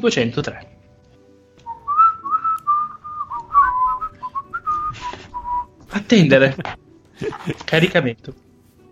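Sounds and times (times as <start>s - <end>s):
speech: 0.0s - 0.8s, 6.0s - 8.4s
person whistling a meandering casual tune: 1.6s - 5.8s
laughter: 6.3s - 8.1s.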